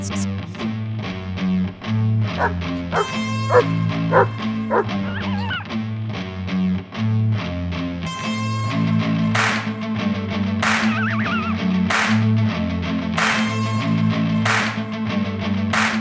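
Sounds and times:
steady droning musical backing: 0.3s - 15.9s
approaching coyote yipping and barking: 2.4s - 5.8s, 10.9s - 11.6s.

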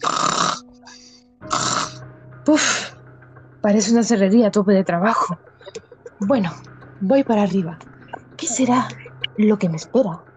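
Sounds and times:
loud rasping snores: 0.0s - 0.6s, 1.5s - 2.0s
speech: 2.5s - 2.9s, 3.6s - 5.5s, 6.2s - 10.3s.

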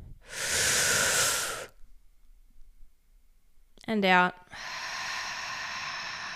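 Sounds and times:
deep breath in: 0.2s - 1.8s, 4.5s - 6.3s
speech: 3.9s - 4.7s.

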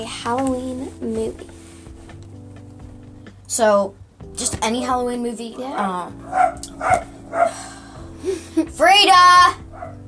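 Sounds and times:
speech: 0.0s - 1.7s, 3.5s - 9.6s
dog barking: 6.2s - 7.6s, 9.7s - 10.0s.

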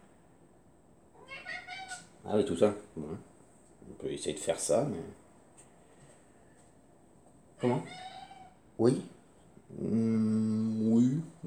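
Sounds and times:
cat meowing in a wavering call: 1.2s - 2.1s, 7.6s - 8.6s
speech: 2.2s - 3.3s, 3.9s - 5.2s, 7.6s - 8.1s, 8.8s - 11.4s.

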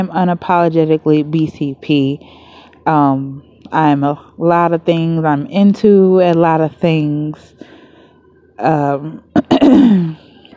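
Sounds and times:
speech: 0.0s - 7.8s, 8.6s - 10.2s
person coughing: 9.3s - 10.3s
voiced throat clearing: 9.3s - 10.4s.

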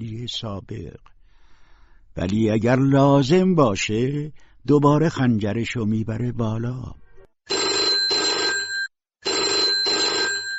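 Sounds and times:
speech: 0.2s - 1.1s, 2.2s - 7.6s
telephone ringing with trilling bell tones: 7.5s - 10.5s.

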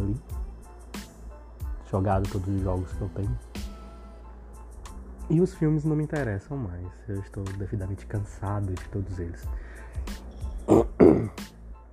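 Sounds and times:
speech: 1.9s - 3.6s, 5.3s - 10.8s
person coughing: 10.6s - 11.5s.

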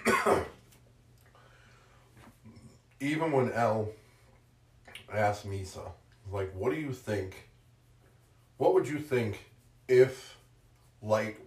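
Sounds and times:
person with a scratchy throat clearing throat: 0.0s - 0.6s
speech: 0.2s - 0.6s, 3.0s - 4.0s, 5.1s - 7.5s, 8.6s - 10.4s, 11.0s - 11.4s.

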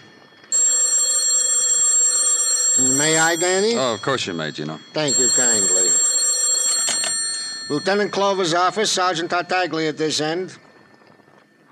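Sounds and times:
telephone bell ringing: 0.0s - 11.7s
speech: 3.3s - 5.2s, 7.7s - 10.6s.

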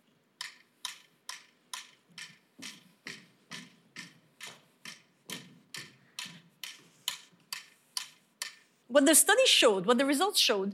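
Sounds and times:
metronome ticking at a brisk even tempo: 0.4s - 8.6s
speech: 8.9s - 10.7s.

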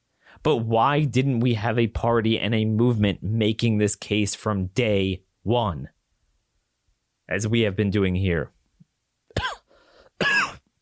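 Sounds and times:
speech: 0.4s - 6.0s, 7.3s - 8.6s, 9.4s - 9.6s
harsh throaty coughing: 9.3s - 10.7s
raspy breath: 9.7s - 10.2s.

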